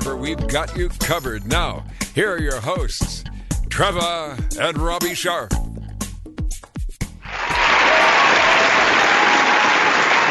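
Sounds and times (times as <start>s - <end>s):
speech: 0.1s - 5.6s
full crowd applauding: 7.2s - 10.2s.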